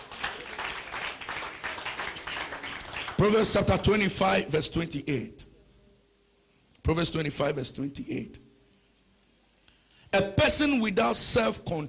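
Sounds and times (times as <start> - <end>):
church congregation clapping hands in a service: 0.0 - 4.0
speech: 3.2 - 5.4, 6.9 - 8.4, 10.1 - 11.8.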